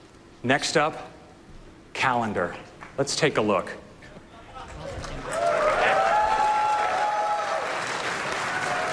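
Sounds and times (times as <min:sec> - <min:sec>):
speech: 0:00.4 - 0:01.2, 0:02.0 - 0:03.8
large audience clapping: 0:04.6 - 0:08.9
whoops from the crowd: 0:05.2 - 0:08.9.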